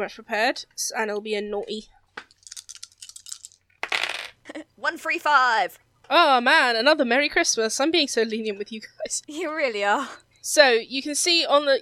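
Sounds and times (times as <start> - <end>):
speech: 0.0 - 2.3, 4.8 - 11.8
three dice rattling and clattering on a hard surface: 2.3 - 4.4.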